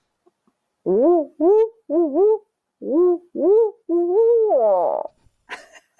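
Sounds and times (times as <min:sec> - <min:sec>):
person imitating owl hoots: 0:00.8 - 0:05.1.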